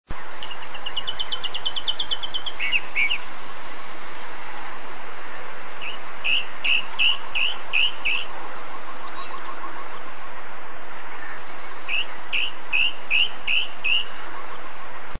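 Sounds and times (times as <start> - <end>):
calandra lark calling: 0.4 - 3.3, 5.8 - 10.2, 11.1 - 15.0.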